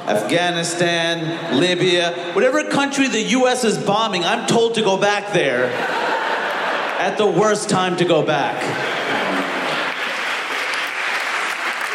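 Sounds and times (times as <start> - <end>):
speech: 0.1 - 6.0, 7.0 - 8.9
laughter: 5.5 - 7.4
audience applause: 8.6 - 11.9.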